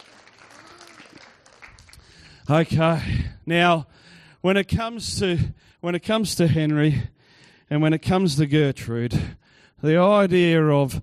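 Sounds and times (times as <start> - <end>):
applause: 0.0 - 2.7
speech: 2.5 - 11.0.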